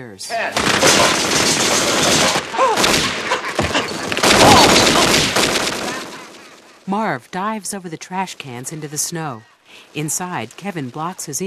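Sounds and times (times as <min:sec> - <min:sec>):
speech: 0:00.0 - 0:03.3, 0:06.9 - 0:11.4
firecrackers crackling and popping in a metal pot: 0:00.5 - 0:06.9.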